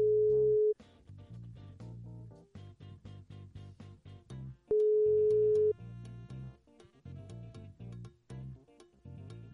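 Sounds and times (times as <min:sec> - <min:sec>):
telephone ringback tone: 0:00.0 - 0:00.8, 0:04.7 - 0:05.8
rhythmic music: 0:00.8 - 0:09.5.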